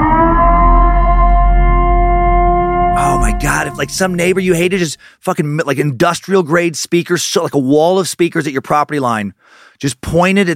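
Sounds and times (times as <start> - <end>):
emergency broadcast siren wailing: 0.0 - 4.8
speech: 3.4 - 10.5.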